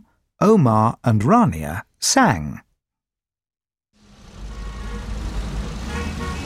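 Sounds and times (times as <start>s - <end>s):
speech: 0.4s - 2.7s
dense road traffic of many idling car engines: 4.0s - 6.4s
faint horn-like tones: 4.5s - 5.2s, 5.8s - 6.4s.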